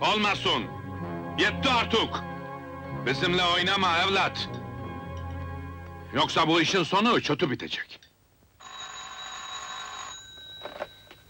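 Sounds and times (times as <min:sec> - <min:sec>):
speech: 0:00.0 - 0:00.8, 0:01.4 - 0:02.3, 0:03.0 - 0:04.6, 0:06.1 - 0:08.0
telephone ringing inside a house, electric bell trill: 0:08.6 - 0:11.2.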